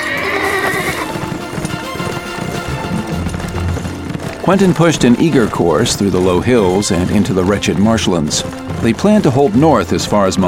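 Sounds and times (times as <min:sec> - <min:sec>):
horse urged into speed by its rider whinnying loudly: 0:00.0 - 0:07.7
horse hooves clopping quickly: 0:00.0 - 0:10.4
speech: 0:04.5 - 0:10.4.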